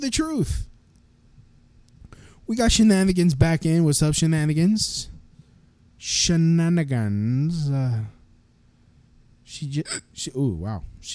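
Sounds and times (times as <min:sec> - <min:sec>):
speech: 0:00.0 - 0:00.7, 0:02.5 - 0:05.1, 0:06.0 - 0:08.2, 0:09.5 - 0:11.1
hiccup: 0:09.8 - 0:10.2.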